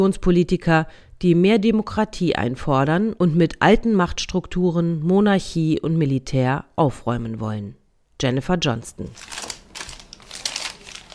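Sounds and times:
speech: 0:00.0 - 0:09.4
receipts being leafed through: 0:09.1 - 0:11.1.

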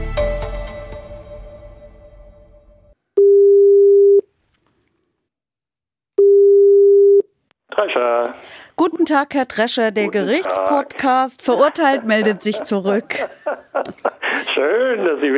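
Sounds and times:
telephone ringback tone while a call connects: 0:03.2 - 0:04.2, 0:06.2 - 0:07.2
speech: 0:07.8 - 0:15.3
laughter: 0:10.2 - 0:15.3.

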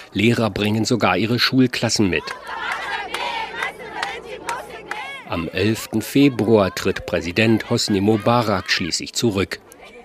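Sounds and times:
large protest crowd chanting on Tahrir Square in Egypt: 0:00.0 - 0:10.0
speech: 0:00.1 - 0:02.8, 0:05.3 - 0:09.7
large protest crowd roaring with many overlapping voices: 0:01.2 - 0:10.0.

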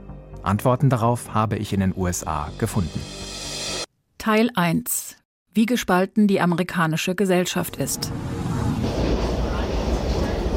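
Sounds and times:
speech: 0:00.4 - 0:03.5, 0:04.2 - 0:08.3
metro subway train rumbling in Washington D.C.: 0:07.8 - 0:10.5.

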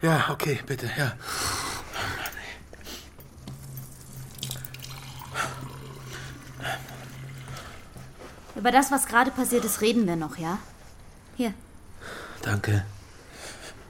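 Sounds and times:
speech: 0:00.0 - 0:01.7, 0:08.6 - 0:10.7, 0:11.4 - 0:11.6, 0:12.4 - 0:12.9
tap water splashing into a glass: 0:03.6 - 0:08.2.

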